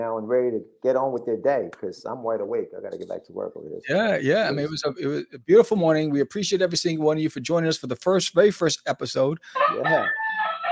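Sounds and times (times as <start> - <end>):
speech: 0.0 - 10.6
rooster crowing: 9.6 - 10.7.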